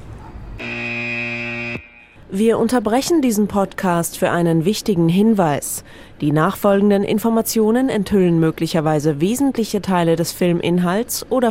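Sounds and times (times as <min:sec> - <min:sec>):
buzzer alarm sound effect used as a spoiler warning: 0:00.6 - 0:02.2
speech: 0:02.3 - 0:11.4.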